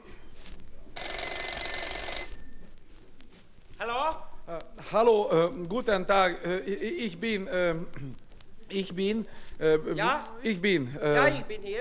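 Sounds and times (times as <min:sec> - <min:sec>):
telephone bell ringing: 0:01.0 - 0:02.8
speech: 0:04.9 - 0:11.7.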